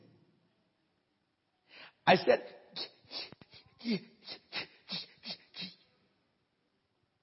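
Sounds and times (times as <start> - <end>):
speech: 2.0 - 4.4
person imitating breathless panting: 2.7 - 5.9.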